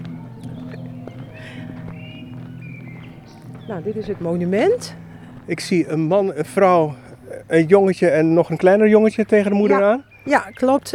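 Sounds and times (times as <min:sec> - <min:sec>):
constant low hum: 0:00.0 - 0:08.7
footsteps of people walking outdoors over to a monument: 0:00.0 - 0:10.9
speech: 0:03.7 - 0:10.9.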